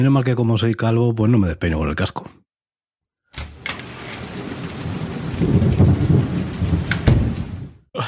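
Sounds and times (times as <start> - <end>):
speech: 0.0 - 2.4, 5.4 - 5.8
heavy rain pouring: 3.4 - 7.9
low thunder rumbling: 3.5 - 7.8
sharp thunder cracks: 4.2 - 7.8.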